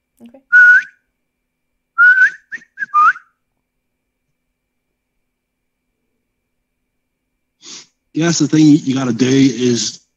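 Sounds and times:
person whistling a signal call: 0.5s - 1.0s, 2.0s - 3.4s
speech: 8.2s - 10.0s.

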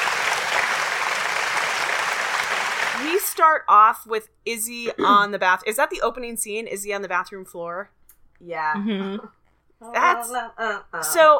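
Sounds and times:
crowd applauding: 0.0s - 3.4s
speech: 3.0s - 11.3s.

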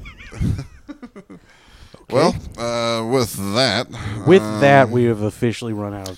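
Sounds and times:
donkey braying with rough grating honk and wheezing gasps: 2.5s - 5.2s
speech: 3.2s - 6.1s.

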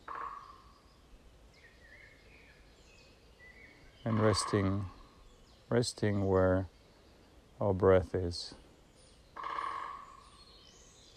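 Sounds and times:
woodpecker call in a forest: 0.0s - 0.8s, 4.0s - 5.3s, 9.3s - 10.7s
faint thin bird chirps in a forest: 0.0s - 11.1s
speech: 4.0s - 5.0s, 5.7s - 6.8s, 7.6s - 8.6s.

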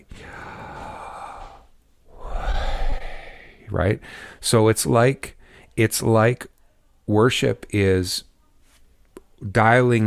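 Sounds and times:
person breathing in and out slowly: 0.0s - 4.4s
speech: 3.7s - 6.5s, 7.1s - 8.3s, 9.4s - 10.0s.

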